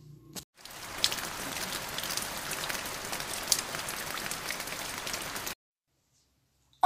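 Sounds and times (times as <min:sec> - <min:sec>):
steady rain pattering on a hard surface: 0:00.6 - 0:05.6.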